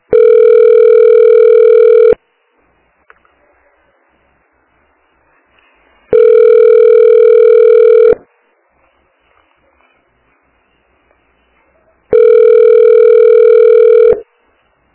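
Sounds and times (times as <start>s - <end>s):
telephone ringing tone down the line calling a health unit in Santa Catarina: 0.1s - 2.2s, 6.1s - 8.2s, 12.1s - 14.2s.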